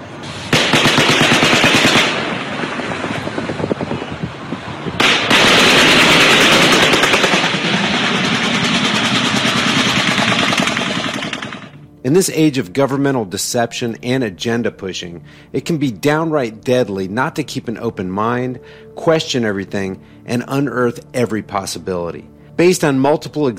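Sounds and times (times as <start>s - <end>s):
distant automatic machine gun fire from a helicopter: 0.5s - 4.1s, 5.0s - 11.8s
speech: 12.1s - 23.5s.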